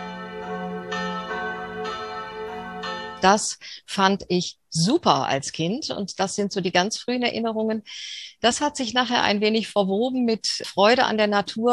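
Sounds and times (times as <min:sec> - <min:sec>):
church bells ringing in an overlapping peal: 0:00.0 - 0:03.4
speech: 0:03.2 - 0:11.7.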